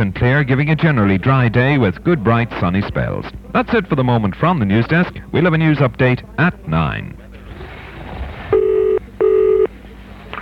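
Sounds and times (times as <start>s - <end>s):
speech: 0.0s - 7.2s
electronic telephone dialing tones: 8.5s - 9.7s.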